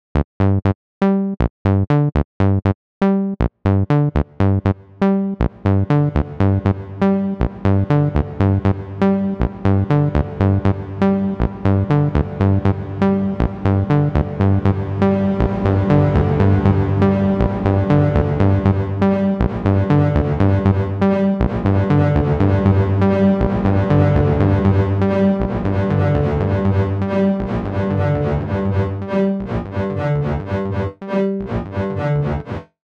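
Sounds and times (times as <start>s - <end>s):
Roland TB-03 bass synthesizer with reverb: 0.2s - 32.6s.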